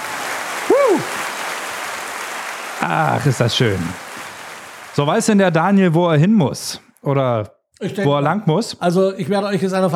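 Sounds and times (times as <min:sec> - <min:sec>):
crowd applause: 0:00.0 - 0:05.4
speech: 0:00.9 - 0:01.2, 0:02.8 - 0:04.1, 0:05.0 - 0:09.9.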